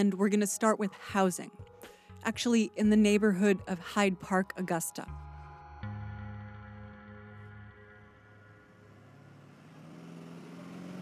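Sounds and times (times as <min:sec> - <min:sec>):
speech: 0:00.0 - 0:05.2
large bus engine idling and revving: 0:07.3 - 0:11.0.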